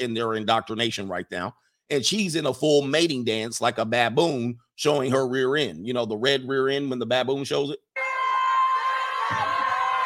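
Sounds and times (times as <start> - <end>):
speech: 0.0 - 7.9
crowd of students cheering and whooping: 8.0 - 10.0
high shouts: 8.0 - 10.0.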